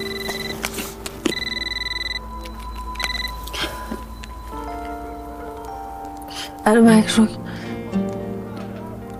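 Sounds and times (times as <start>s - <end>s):
mobile phone ringing with electronic ringtone: 0.0s - 5.7s
speech: 6.6s - 7.4s.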